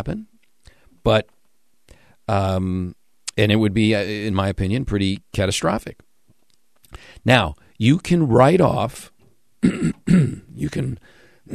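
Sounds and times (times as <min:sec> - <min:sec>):
speech: 0:00.0 - 0:00.3, 0:01.0 - 0:01.3, 0:02.3 - 0:06.1, 0:06.9 - 0:11.5
person coughing in rough raspy bursts: 0:09.6 - 0:10.6
person clearing throat: 0:09.6 - 0:11.5.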